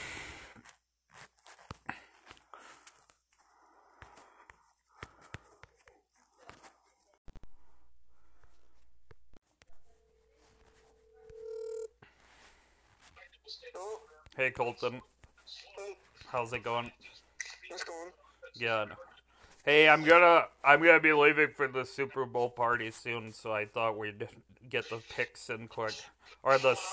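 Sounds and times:
telephone DTMF dialing tones: 0:11.3 - 0:12.0
speech: 0:13.7 - 0:15.1, 0:16.3 - 0:17.1, 0:17.8 - 0:19.0, 0:19.6 - 0:26.9.

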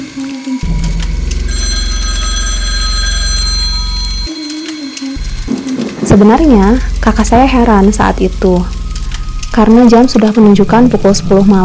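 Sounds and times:
hotel room telephone ringing: 0:01.4 - 0:06.3
speech: 0:06.2 - 0:08.8, 0:09.6 - 0:11.6.

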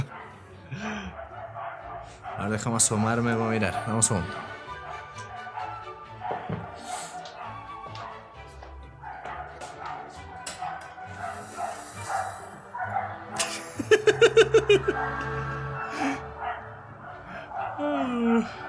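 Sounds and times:
angry dog barking outside with yips and whimpering: 0:00.0 - 0:08.4, 0:09.0 - 0:13.5, 0:14.1 - 0:18.6
speech: 0:02.4 - 0:04.6
laughter: 0:13.2 - 0:16.3.

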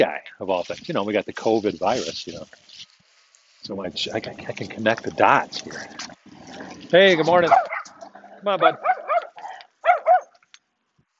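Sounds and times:
speech: 0:00.0 - 0:02.9, 0:03.6 - 0:07.7, 0:08.4 - 0:08.9
big dog growling with a low rumble: 0:04.2 - 0:10.0
big dog barking deeply: 0:07.5 - 0:08.0, 0:08.6 - 0:10.4.

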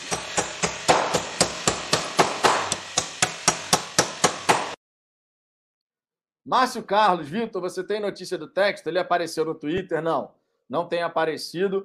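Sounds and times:
sharp metallic hammer strikes: 0:00.0 - 0:04.8
speech: 0:06.5 - 0:11.8.

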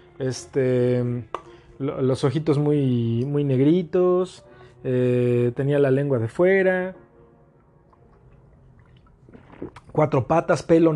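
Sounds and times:
speech: 0:00.2 - 0:07.0, 0:09.6 - 0:10.9
sipping water: 0:07.9 - 0:10.2
small gulp of water: 0:08.7 - 0:10.1.

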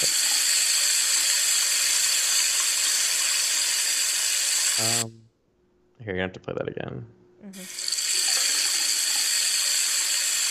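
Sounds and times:
tap running water into a sink: 0:00.0 - 0:05.1, 0:07.6 - 0:10.4
speech: 0:04.8 - 0:05.2, 0:06.0 - 0:07.8.

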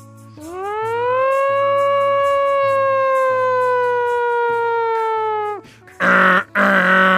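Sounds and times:
voice imitating a fire truck siren: 0:00.5 - 0:07.1
short loud bursts of vocal noise: 0:06.0 - 0:07.1.

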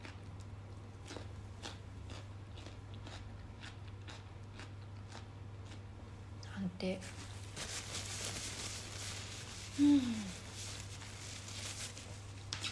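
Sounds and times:
vegetable sticks being bitten and chewed: 0:00.0 - 0:06.0
low steady hum: 0:00.0 - 0:12.7
speech: 0:06.8 - 0:07.2.

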